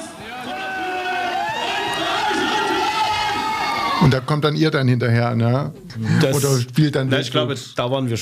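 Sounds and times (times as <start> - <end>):
live concert audience cheering and shouting: 0.0 - 4.4
speech: 4.0 - 8.2.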